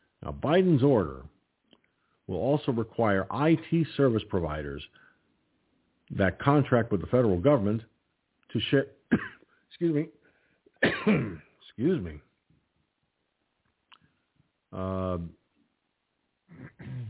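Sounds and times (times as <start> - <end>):
speech: 0.2 - 1.3, 2.3 - 5.0, 6.1 - 7.9, 8.5 - 10.2, 11.0 - 12.3, 14.7 - 15.4, 16.5 - 17.0
person clearing throat and coughing from a tickle in the throat: 9.1 - 9.5, 10.8 - 11.5, 16.5 - 17.0.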